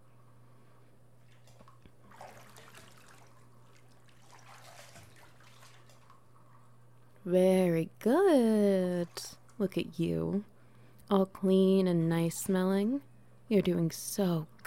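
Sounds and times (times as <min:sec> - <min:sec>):
low steady hum: 0:00.0 - 0:14.6
bathwater sloshing and splashing as someone rinses off soap: 0:01.2 - 0:07.2, 0:08.8 - 0:09.6
gentle trickles of bathwater: 0:01.3 - 0:06.7
speech: 0:07.3 - 0:10.5, 0:11.1 - 0:14.6.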